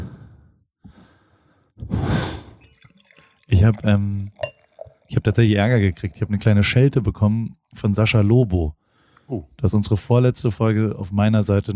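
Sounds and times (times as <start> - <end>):
breathing into microphone: 0.0 - 3.4, 8.8 - 9.3
speech: 3.6 - 4.4, 5.2 - 11.7.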